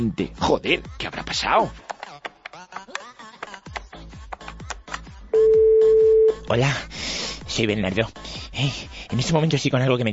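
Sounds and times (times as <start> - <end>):
speech: 0.0 - 1.9, 6.5 - 7.0, 7.6 - 10.1
electronic phone beeps of a number being dialed: 5.4 - 6.4
steady unbroken telephone tone: 5.4 - 6.4.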